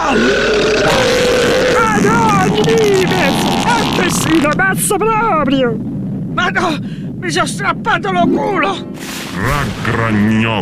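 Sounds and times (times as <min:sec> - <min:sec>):
loud drawn-out gurgling burp: 0:00.0 - 0:04.6
speech: 0:04.4 - 0:10.6.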